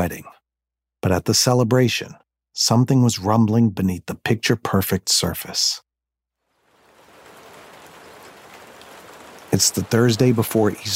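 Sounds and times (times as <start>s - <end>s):
speech: 0.0s - 0.3s, 1.0s - 5.8s, 9.5s - 10.9s
afternoon rain pattering on a surface: 6.4s - 10.9s.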